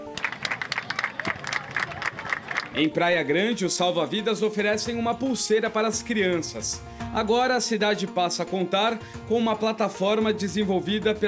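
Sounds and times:
crowd of people clapping in unison on a beach: 0:00.0 - 0:02.8
speech: 0:02.8 - 0:11.2.

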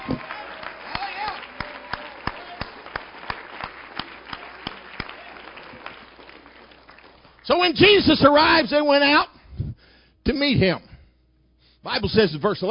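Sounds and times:
crowd noise: 0:00.0 - 0:07.2
congregation applauding with rhythmic claps: 0:00.0 - 0:08.4
speech: 0:07.5 - 0:09.3, 0:10.3 - 0:10.9, 0:11.8 - 0:12.6.

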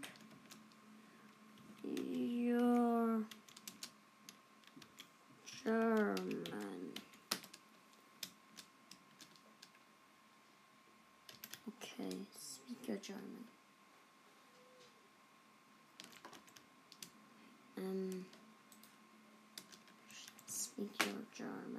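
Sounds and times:
person speaking: 0:01.5 - 0:03.8, 0:05.4 - 0:07.4, 0:11.6 - 0:13.5, 0:17.7 - 0:18.4, 0:20.0 - 0:21.7
typing on a computer keyboard: 0:01.8 - 0:04.0, 0:04.6 - 0:05.1, 0:05.8 - 0:07.6, 0:08.2 - 0:09.8, 0:11.3 - 0:11.6, 0:16.0 - 0:17.1, 0:19.6 - 0:20.4.

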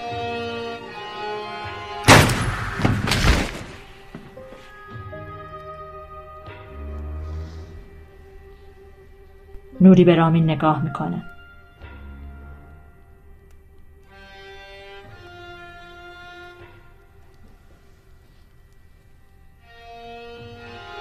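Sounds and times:
sustained tense music: 0:00.0 - 0:20.9
gunshot from a gun held to a person's head: 0:02.1 - 0:04.0
heavy crack: 0:02.1 - 0:04.4
speech: 0:09.8 - 0:11.4.

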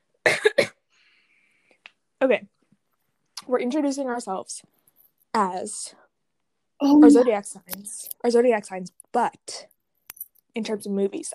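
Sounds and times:
speech: 0:00.2 - 0:00.7, 0:02.2 - 0:02.5, 0:03.5 - 0:06.0, 0:06.8 - 0:09.7, 0:10.6 - 0:11.3
cough: 0:00.2 - 0:00.8.

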